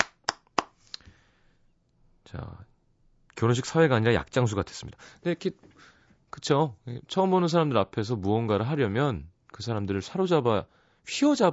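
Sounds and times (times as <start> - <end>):
sharp hand claps: 0.0 - 1.0
speech: 2.3 - 2.7, 3.4 - 11.5.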